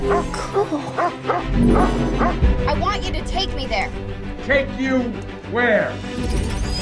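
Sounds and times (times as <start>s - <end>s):
dog barking in short yappy bursts: 0.0s - 2.4s
speech: 0.1s - 6.7s.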